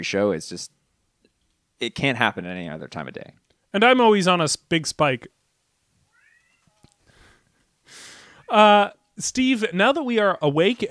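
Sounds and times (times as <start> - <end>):
speech: 0.0 - 0.8, 1.8 - 5.4, 7.9 - 10.9
burst of airy hiss-like noise: 0.0 - 10.7
cat meowing: 6.1 - 7.0.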